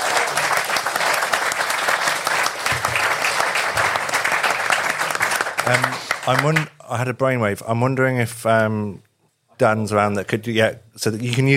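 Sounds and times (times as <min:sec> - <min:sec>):
room full of people applauding: 0:00.0 - 0:06.7
speech: 0:05.7 - 0:11.5.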